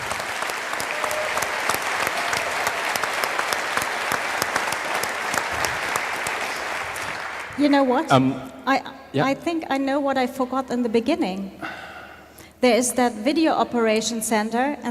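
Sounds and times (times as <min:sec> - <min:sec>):
sustained applause from a large audience: 0:00.0 - 0:08.2
speech: 0:07.6 - 0:11.7, 0:12.6 - 0:14.8.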